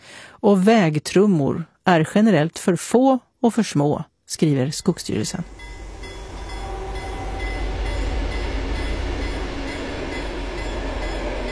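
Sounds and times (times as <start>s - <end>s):
speech: 0.4s - 5.7s
train rushing past on a railway embankment: 5.0s - 11.4s.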